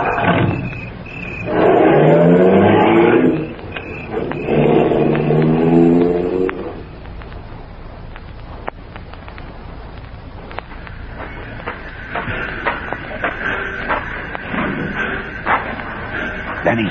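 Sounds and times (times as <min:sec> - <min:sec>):
car engines revving and roaring off down the street: 0:00.0 - 0:08.4, 0:10.0 - 0:16.9
traffic noise: 0:00.0 - 0:16.9.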